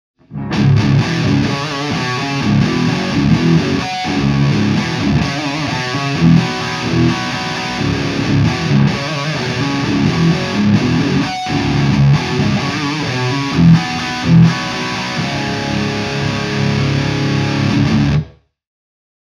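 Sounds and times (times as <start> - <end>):
micro dark heavy riff: 0.2 - 18.4.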